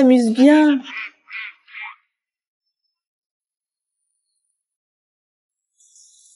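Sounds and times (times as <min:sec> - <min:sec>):
speech: 0:00.0 - 0:01.1
duck quacking: 0:00.8 - 0:02.0.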